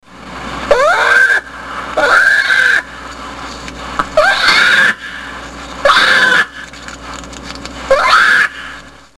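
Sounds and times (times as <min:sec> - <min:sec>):
black bear cub distress call: 0:00.7 - 0:03.0, 0:04.2 - 0:06.6, 0:07.9 - 0:08.8.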